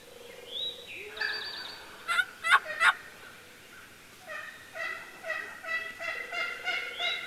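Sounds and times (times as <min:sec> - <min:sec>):
mother hen clucking to her brood: 0:02.1 - 0:03.0, 0:04.2 - 0:07.2.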